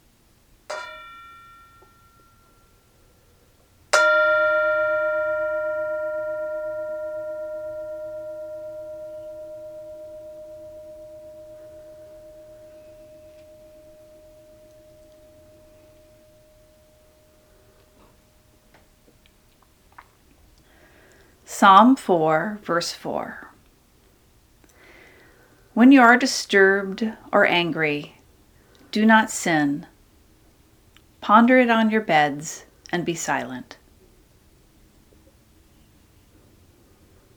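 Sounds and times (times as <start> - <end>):
mindfulness bell ringing in a quiet room: 0.7 - 18.7
speech: 21.6 - 23.5, 25.8 - 28.2, 28.9 - 29.9, 31.2 - 33.8.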